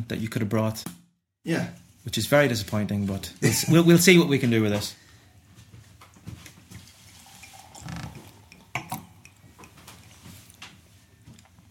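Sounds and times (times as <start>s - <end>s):
speech: 0.0s - 5.0s
beer being poured into a glass: 6.7s - 11.4s
light glassy clinks: 7.7s - 10.2s.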